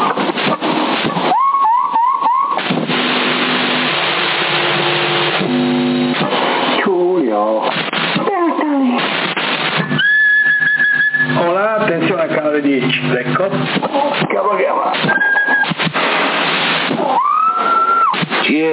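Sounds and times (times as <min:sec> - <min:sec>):
CB radio channel crackle: 0:00.0 - 0:18.7
whistled tones over a crackly CB radio channel in Sassari: 0:01.2 - 0:02.6, 0:09.7 - 0:11.5, 0:15.0 - 0:15.7, 0:17.1 - 0:18.2
voices talking on a CB radio channel: 0:06.8 - 0:09.2, 0:11.3 - 0:15.7, 0:18.4 - 0:18.7.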